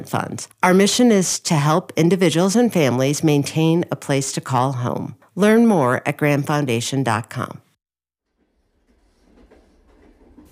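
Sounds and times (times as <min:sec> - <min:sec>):
speech: 0:00.0 - 0:07.6
train riding the rails: 0:09.2 - 0:10.5.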